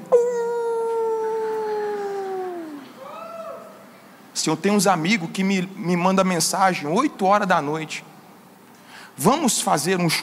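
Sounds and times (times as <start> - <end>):
person imitating a wolf howl: 0.0 - 3.7
speech: 4.4 - 8.1, 9.2 - 10.2.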